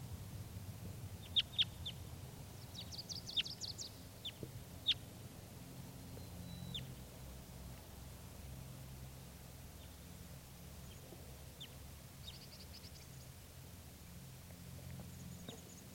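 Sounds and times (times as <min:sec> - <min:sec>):
steady low rumble of noise: 0:00.0 - 0:15.9
female wild bird calling in high chirps and trills: 0:01.2 - 0:02.0, 0:02.6 - 0:05.0, 0:06.1 - 0:07.1, 0:10.8 - 0:13.4, 0:14.8 - 0:15.9.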